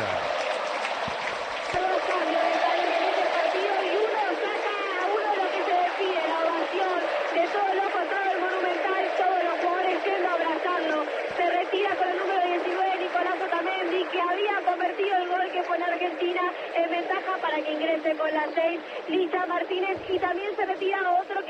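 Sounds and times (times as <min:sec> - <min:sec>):
large stadium crowd cheering in a farewell ovation: 0:00.0 - 0:21.4.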